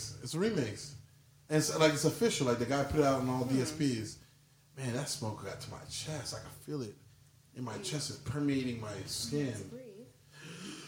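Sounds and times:
speech: 0.2 - 4.2, 4.8 - 7.0, 7.6 - 9.9
forceful exaggerated breath drawn in: 10.3 - 10.8.

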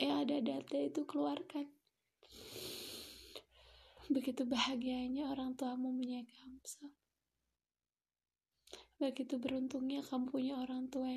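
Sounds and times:
speech: 0.0 - 2.6, 4.1 - 7.0, 8.7 - 11.1
deep breath in and out: 2.2 - 4.1.

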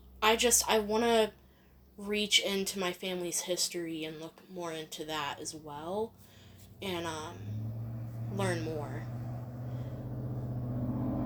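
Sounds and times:
speech: 0.2 - 1.4, 2.0 - 7.6, 8.4 - 9.2
heavy truck engine droning outside: 6.3 - 11.2.

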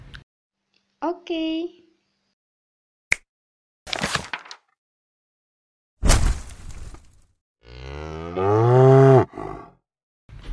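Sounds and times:
speech: 1.0 - 1.8
cow tied to trees mooing: 7.6 - 9.8.

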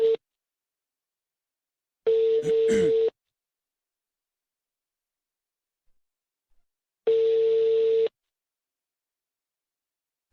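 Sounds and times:
telephone ringing tone from an outgoing call: 2.1 - 3.1, 7.1 - 8.1.

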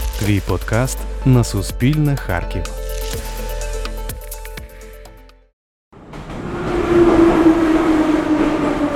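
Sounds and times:
speech: 0.2 - 3.3
metro train pulling into a station: 6.0 - 8.9.

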